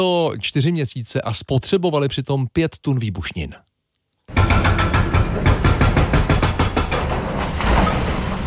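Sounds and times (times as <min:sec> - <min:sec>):
speech: 0:00.0 - 0:03.7
heavy excavator grinding and hammering through a tunnel wall: 0:04.3 - 0:08.4.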